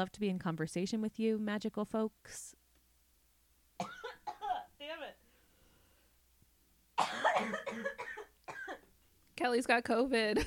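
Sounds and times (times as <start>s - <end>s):
speech: 0.0s - 2.6s, 7.0s - 8.1s, 9.4s - 10.4s
harsh rasping coughs: 3.8s - 4.6s, 7.0s - 8.9s.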